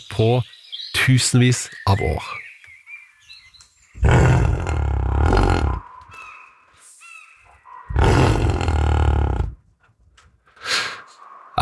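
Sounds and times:
speech: 0:00.0 - 0:02.4
faint thin whistled notes: 0:00.4 - 0:04.0, 0:05.8 - 0:08.0
European bison roaring: 0:04.0 - 0:05.8, 0:07.8 - 0:09.6.

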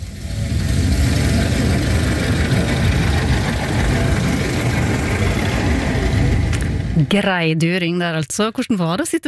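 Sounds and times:
vintage car engine running while driving: 0:00.0 - 0:07.2
speech: 0:07.1 - 0:09.2.

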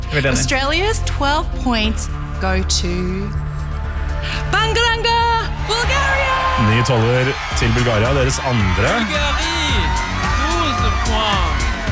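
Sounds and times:
speech: 0:00.1 - 0:03.4, 0:04.2 - 0:10.0
delegation cheering and celebrating in green room of a song contest: 0:05.6 - 0:11.9.

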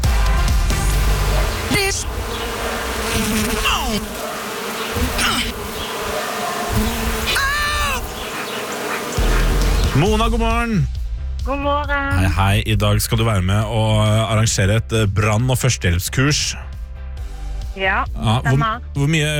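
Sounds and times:
many bees buzzing: 0:00.4 - 0:10.2
speech: 0:03.9 - 0:04.2, 0:10.0 - 0:16.7, 0:17.8 - 0:19.3.

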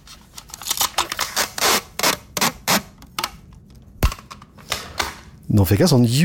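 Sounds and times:
adhesive tape pulled off the roll: 0:00.4 - 0:03.1
speech: 0:05.5 - 0:06.2.

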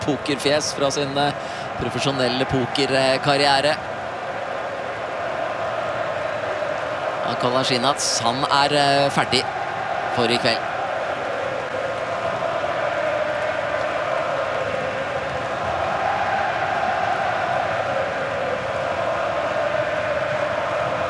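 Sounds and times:
speech: 0:00.0 - 0:03.9, 0:07.3 - 0:09.6, 0:10.2 - 0:10.7
large stadium crowd of Canadian spectators cheering at a national-team match: 0:00.0 - 0:21.0.

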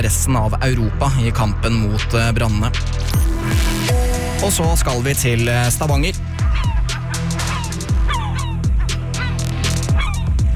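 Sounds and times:
speech: 0:00.0 - 0:06.3
flock of seagulls calling in Stavanger: 0:05.9 - 0:10.5.

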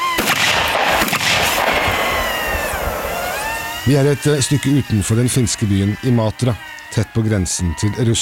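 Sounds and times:
sharp gunshots echoing across open ground at reserve soldiers' shooting practice: 0:00.0 - 0:03.2
speech: 0:03.9 - 0:08.1.

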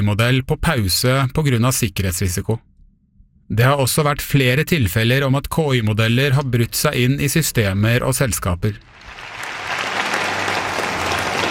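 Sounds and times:
speech: 0:00.0 - 0:02.7, 0:03.5 - 0:09.0
crowd applause at a product launch for a new US government website: 0:08.8 - 0:11.4.

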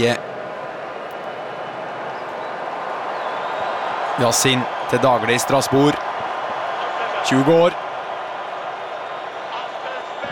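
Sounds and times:
speech: 0:00.0 - 0:00.3, 0:04.2 - 0:06.1, 0:07.2 - 0:07.8
subdued stadium crowd cheering: 0:00.0 - 0:10.3.

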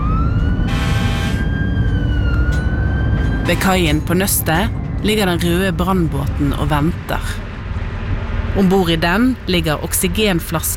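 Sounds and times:
fire engine siren wailing: 0:00.0 - 0:08.6
fire engine truck driving with a heavy rumble: 0:00.0 - 0:10.7
speech: 0:03.5 - 0:07.4, 0:08.5 - 0:10.7.

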